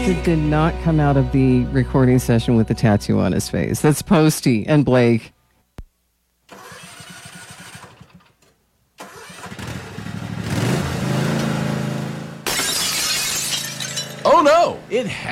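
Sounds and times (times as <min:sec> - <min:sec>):
speech: 0:00.0 - 0:05.4, 0:14.9 - 0:15.2
small lawnmower engine sputtering and revving: 0:06.5 - 0:08.3, 0:09.0 - 0:12.4
car side window glass shattering: 0:12.4 - 0:14.6.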